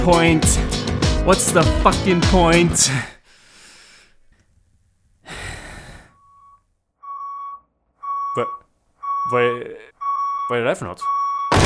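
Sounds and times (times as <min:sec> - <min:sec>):
speech: 0:00.1 - 0:03.2, 0:08.4 - 0:08.6, 0:09.2 - 0:09.9, 0:10.5 - 0:11.2
heavy breaths or sighs: 0:02.8 - 0:04.3, 0:05.2 - 0:06.4
forklift reversing alarm beeps: 0:06.1 - 0:11.6.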